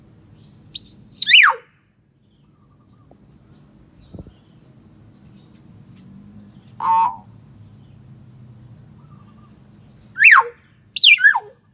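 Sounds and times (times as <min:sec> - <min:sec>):
hill myna high clear whistle dropping into buzzy downslur: 0:00.8 - 0:01.7, 0:10.2 - 0:11.6.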